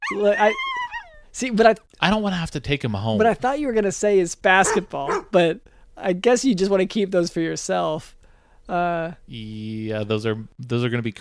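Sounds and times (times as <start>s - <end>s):
dog whimpering and whining: 0.0s - 1.4s, 4.6s - 5.4s
speech: 0.1s - 11.1s.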